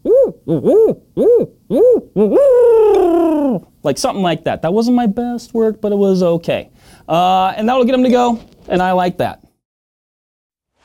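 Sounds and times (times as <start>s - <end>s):
person imitating owl hoots: 0.0s - 3.7s
speech: 0.5s - 9.4s.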